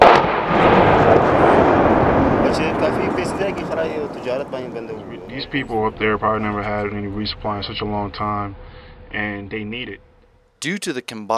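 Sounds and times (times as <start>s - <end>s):
mortar fire on an enemy fighting position: 0.0s - 6.0s
crackling rumble: 0.0s - 10.6s
speech: 5.5s - 11.3s.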